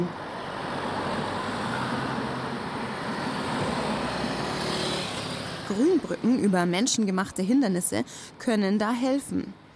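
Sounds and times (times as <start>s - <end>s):
steady continuous roar of motorway traffic: 0.0s - 9.7s
speech: 5.7s - 9.6s.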